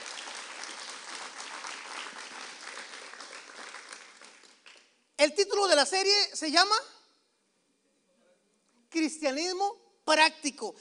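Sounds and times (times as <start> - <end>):
crowd applauding: 0.0 - 4.9
speech: 5.2 - 7.0, 9.0 - 10.8.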